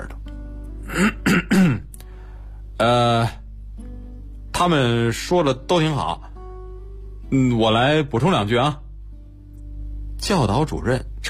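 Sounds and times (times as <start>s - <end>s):
low steady hum: 0.0s - 11.2s
man clearing his throat: 0.8s - 1.9s
speech: 2.8s - 3.4s, 4.6s - 6.3s, 7.3s - 8.8s, 10.2s - 11.1s.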